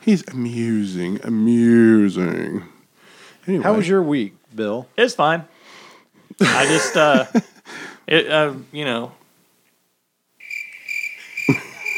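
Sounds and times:
speech: 0.0 - 2.8, 3.4 - 5.6, 6.3 - 9.2
laughter: 6.4 - 7.6, 11.2 - 11.9
high-pitched cricket chirp: 10.4 - 11.9.

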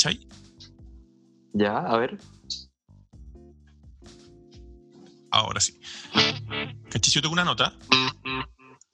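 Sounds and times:
speech: 0.0 - 0.4, 1.5 - 2.7, 5.4 - 8.5
distorted electric guitar note with delay echo repeats: 6.0 - 7.3.

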